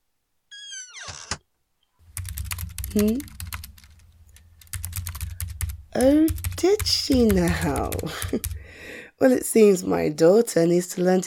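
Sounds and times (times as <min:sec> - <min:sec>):
low hum: 0:02.0 - 0:09.1
rapid computer keyboard typing: 0:02.1 - 0:08.6
speech: 0:02.9 - 0:03.3, 0:06.0 - 0:11.2.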